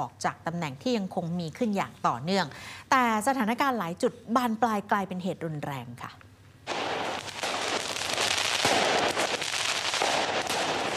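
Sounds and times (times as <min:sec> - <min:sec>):
speech: 0:00.0 - 0:06.3
firecrackers set off at riot police on a street in Tirana Albania: 0:06.7 - 0:10.9.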